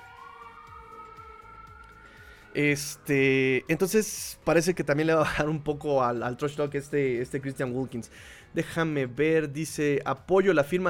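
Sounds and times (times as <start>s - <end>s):
ambulance siren wailing: 0.0s - 6.8s
speech: 2.6s - 10.8s.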